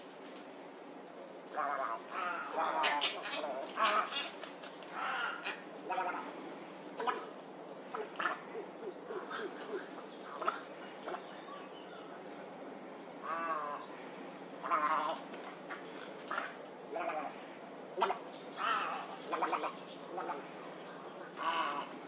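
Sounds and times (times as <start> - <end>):
constant hiss: 0.0 - 22.0
heron guttural rattling croaks: 1.5 - 12.2, 13.2 - 22.0
speech: 1.6 - 4.4.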